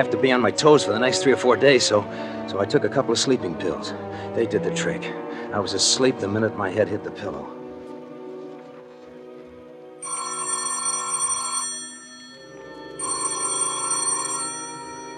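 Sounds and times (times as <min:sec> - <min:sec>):
speech: 0:00.0 - 0:07.6
telephone ringing: 0:10.0 - 0:15.1.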